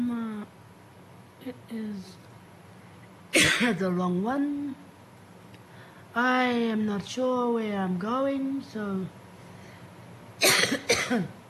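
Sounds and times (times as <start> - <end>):
speech: 1.4 - 2.3, 3.6 - 4.9, 6.2 - 9.2, 11.1 - 11.4
person coughing harshly: 3.4 - 3.8, 10.4 - 11.4.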